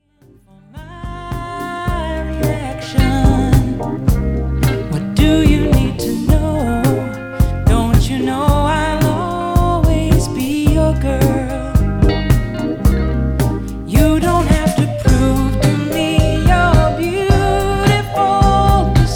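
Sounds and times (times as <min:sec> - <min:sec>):
1970s female pop song played on a laser turntable: 0:00.4 - 0:19.1.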